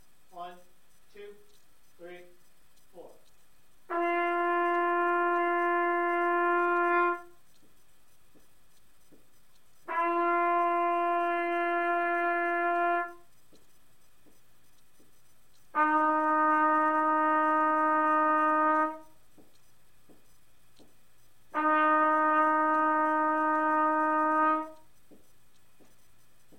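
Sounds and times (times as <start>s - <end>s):
trumpet playing first five steps: 2.9s - 7.7s, 9.8s - 13.4s, 15.6s - 19.7s, 21.3s - 26.5s.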